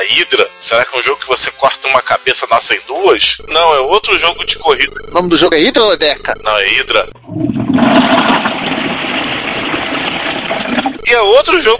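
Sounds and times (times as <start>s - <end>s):
speech: 0.1s - 8.4s, 11.1s - 11.7s
toilet flushing: 7.2s - 11.0s.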